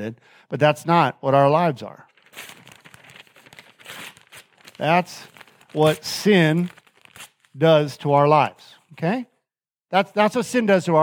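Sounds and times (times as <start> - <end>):
speech: 0.0 - 2.6, 4.8 - 6.8, 7.6 - 9.3, 9.9 - 11.0
plain white sheet of paper being crumpled: 2.1 - 7.6.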